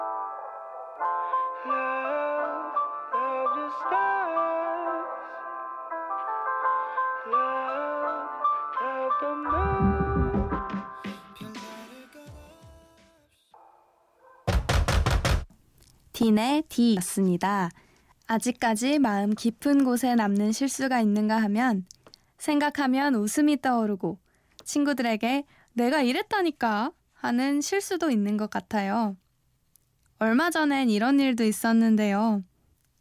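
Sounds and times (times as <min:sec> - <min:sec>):
song with a bright chiming melody on the radio: 0:00.2 - 0:13.5
loud sharp knocking bursts: 0:14.5 - 0:15.5
speech: 0:16.2 - 0:29.2, 0:30.2 - 0:32.5.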